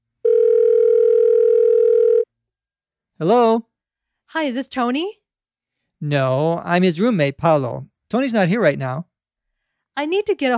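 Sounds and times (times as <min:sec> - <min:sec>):
telephone ringing with electronic ring tone: 0:00.2 - 0:02.3
speech: 0:03.2 - 0:03.7, 0:04.3 - 0:05.2, 0:06.0 - 0:09.1, 0:10.0 - 0:10.5.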